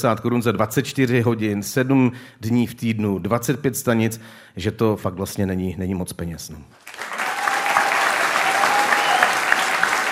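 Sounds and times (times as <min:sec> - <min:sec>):
speech: 0:00.0 - 0:07.1
audience applause: 0:06.8 - 0:10.1.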